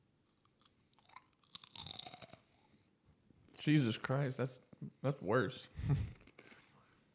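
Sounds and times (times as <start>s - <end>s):
someone biting into a crisp kettle chip: 0.2s - 2.8s, 3.5s - 4.4s
speech: 3.6s - 6.2s.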